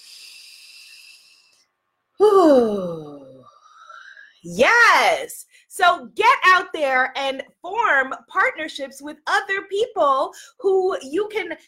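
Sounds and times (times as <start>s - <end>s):
soft hissing inhale: 0.0s - 1.6s
speech: 2.4s - 3.0s, 4.4s - 11.6s.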